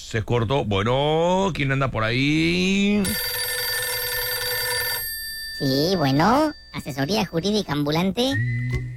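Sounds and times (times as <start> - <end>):
speech: 0.1 - 3.4, 5.6 - 8.8
electronic telephone ringing with an incoming call: 3.0 - 7.7.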